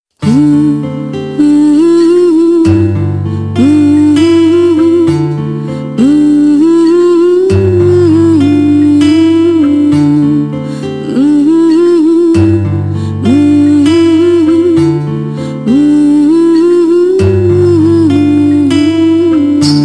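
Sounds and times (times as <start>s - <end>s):
woman singing classical music: 0.2s - 19.8s.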